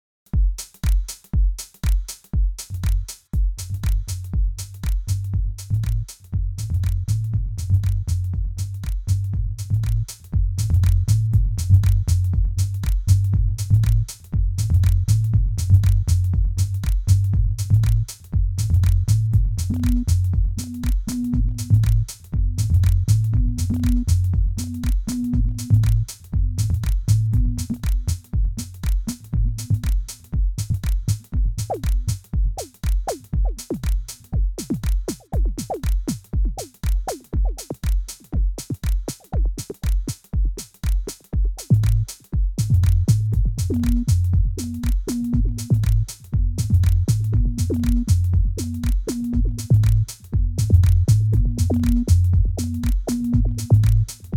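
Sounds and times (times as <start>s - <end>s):
live drum loop: 0.3s - 54.3s.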